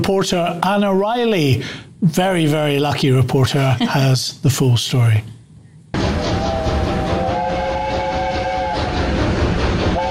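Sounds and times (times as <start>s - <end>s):
speech: 0.0s - 5.4s
British steam locomotive roaring on a railway at a steam gala: 5.9s - 10.0s.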